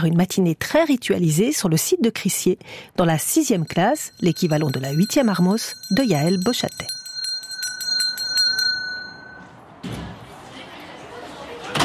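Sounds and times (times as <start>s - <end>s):
speech: 0.0s - 7.0s
school bell ringing: 3.3s - 9.8s
thud: 9.8s - 10.2s.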